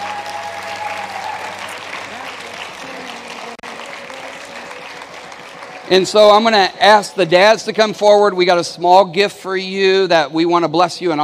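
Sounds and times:
church congregation clapping hands: 0.0s - 8.3s
speech: 5.9s - 11.2s.

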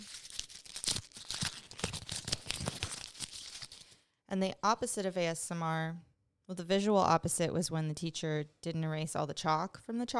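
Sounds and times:
paper crumpling: 0.0s - 4.0s
speech: 4.3s - 10.1s.

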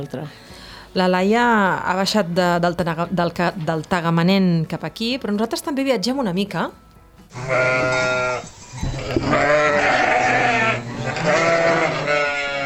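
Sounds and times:
speech: 0.0s - 10.0s
sheep bleating at a farm: 7.3s - 12.6s.

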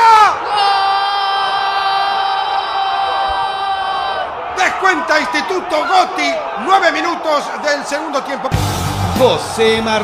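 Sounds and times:
football commentator's long sustained goal scream: 0.0s - 4.8s
crowd roaring: 0.0s - 10.0s
speech: 5.1s - 10.0s.

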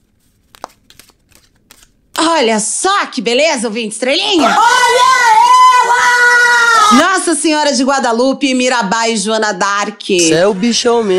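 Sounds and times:
deck of cards being shuffled: 0.0s - 2.2s
speech: 2.3s - 11.1s.

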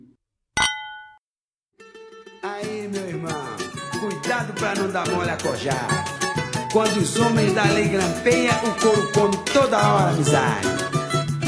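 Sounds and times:
glasses clinking in a toast: 0.6s - 1.2s
speech: 2.4s - 6.1s, 6.7s - 10.8s.

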